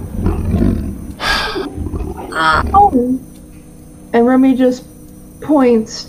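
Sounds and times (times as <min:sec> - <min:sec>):
voice imitating the low growl of a large wolf: 0:00.0 - 0:03.2
speech: 0:02.4 - 0:03.3, 0:04.1 - 0:06.0.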